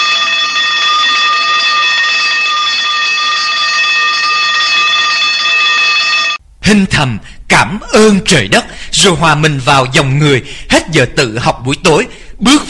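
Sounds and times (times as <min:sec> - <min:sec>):
lights-out electric bell ringing in a school dormitory: 0:00.0 - 0:06.4
speech: 0:06.7 - 0:12.6.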